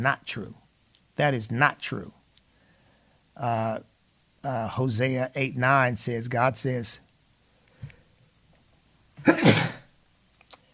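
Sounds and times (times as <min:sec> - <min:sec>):
speech: 0:00.0 - 0:00.6, 0:01.2 - 0:02.2, 0:03.4 - 0:07.0
faint breath: 0:02.5 - 0:03.3
person sneezing: 0:09.2 - 0:09.9.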